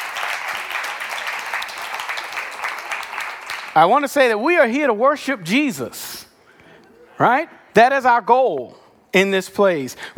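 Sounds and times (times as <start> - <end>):
church audience clapping at a worship service: 0.0 - 4.0
speech: 3.8 - 6.1, 7.2 - 10.1.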